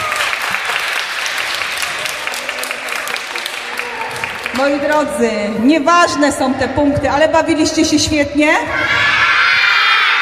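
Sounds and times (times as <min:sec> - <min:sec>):
children's audience at a preschool olympiad clapping: 0:00.0 - 0:05.1
speech: 0:04.6 - 0:09.2.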